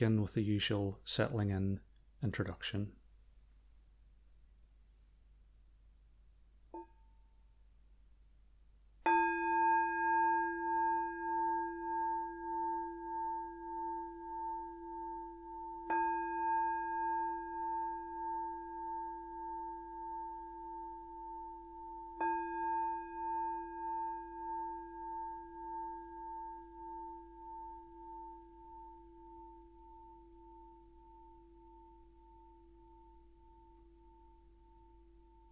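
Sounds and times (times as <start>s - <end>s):
speech: 0.0s - 3.0s
meditation bell struck with long shimmering sustain: 9.0s - 35.5s.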